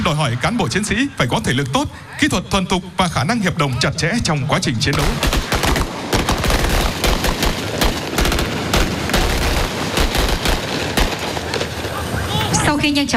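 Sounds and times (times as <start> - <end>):
speech: 0.0 - 5.5, 12.8 - 13.1
gunfire during a military obstacle-course shooting drill: 4.9 - 12.1.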